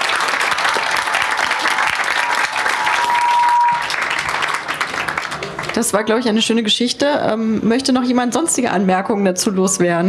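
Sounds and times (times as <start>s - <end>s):
audience applause with many hands clapping: 0.0s - 6.4s
speech: 5.8s - 10.0s.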